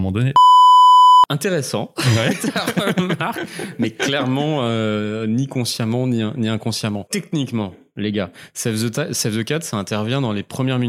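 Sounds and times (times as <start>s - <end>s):
speech: 0.0s - 0.5s, 1.3s - 10.8s
censor beep with a pure high tone: 0.4s - 1.3s
laughter: 2.0s - 4.9s.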